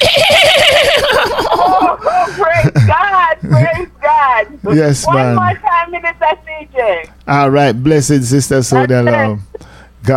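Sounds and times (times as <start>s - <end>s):
horse whinny with fast quavering pitch and snorting: 0.0s - 1.0s
laughter: 0.0s - 3.8s
steady hum: 0.0s - 10.1s
speech: 4.7s - 5.6s, 6.2s - 10.1s.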